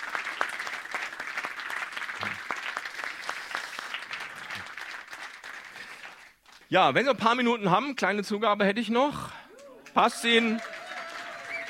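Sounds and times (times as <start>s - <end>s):
crowd applauding: 0.0s - 6.6s, 9.6s - 11.6s
speech: 6.7s - 9.4s, 10.0s - 10.7s.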